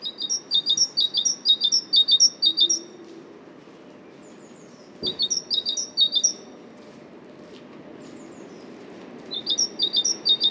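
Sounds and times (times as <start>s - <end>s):
great tit Parus major singing ringing two-note phrases: 0.0s - 2.9s, 5.0s - 6.5s, 9.3s - 10.4s.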